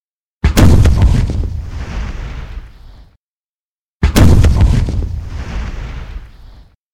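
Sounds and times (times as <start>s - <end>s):
heavy artillery gun shots over a bay: 0.4s - 2.7s, 4.0s - 6.5s.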